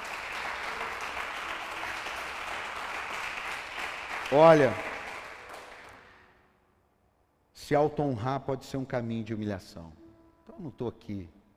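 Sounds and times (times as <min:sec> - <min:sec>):
audience applause: 0:00.0 - 0:06.3
speech: 0:04.3 - 0:04.9, 0:07.7 - 0:10.0, 0:10.6 - 0:11.4.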